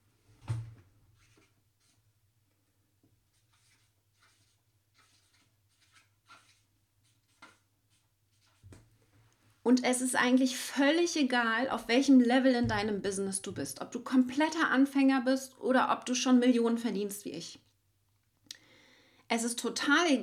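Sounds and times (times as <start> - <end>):
pen or marker scratching in handwriting: 3.4 - 8.6
speech: 9.7 - 17.7, 19.3 - 20.2.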